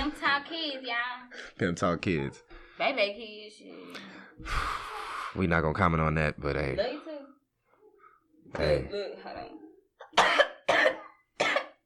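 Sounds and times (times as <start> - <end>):
speech: 0.4 - 7.2, 8.5 - 9.6
person coughing harshly: 10.0 - 11.8.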